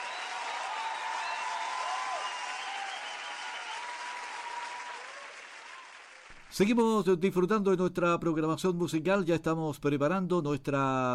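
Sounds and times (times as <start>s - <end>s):
applause from a large audience: 0.0s - 6.5s
speech: 6.5s - 11.1s.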